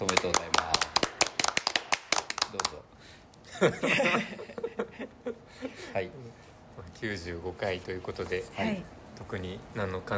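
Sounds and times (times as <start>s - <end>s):
hand clapping from a few people: 0.0s - 2.8s
laughter: 3.5s - 5.8s
speech: 3.6s - 10.1s.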